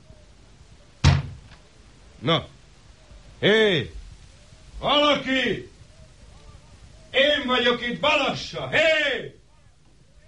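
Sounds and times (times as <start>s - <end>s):
heavy blow on a door: 1.0s - 1.4s
speech: 2.2s - 2.6s, 3.4s - 4.0s, 4.8s - 5.7s, 7.1s - 9.4s.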